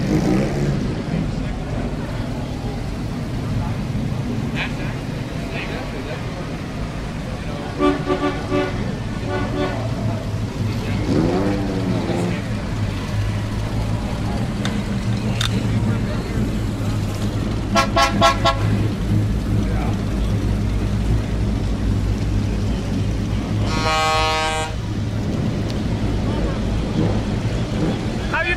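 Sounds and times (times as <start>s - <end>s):
low engine rumble: 0.0s - 28.5s
people talking: 0.7s - 13.2s, 14.1s - 17.5s, 19.4s - 23.9s, 25.8s - 28.5s
car horn toots at an outdoor car show in Morro Bay, California: 7.8s - 9.9s, 17.7s - 18.8s, 23.6s - 24.8s.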